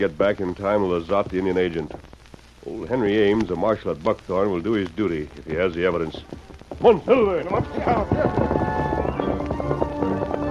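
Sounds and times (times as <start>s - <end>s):
speech: 0.0s - 8.9s
horse galloping hoofbeats: 5.0s - 10.4s.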